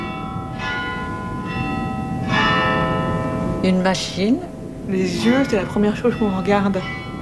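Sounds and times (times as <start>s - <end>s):
several church bells ringing, small carillon: 0.0s - 7.2s
speech: 3.6s - 7.0s.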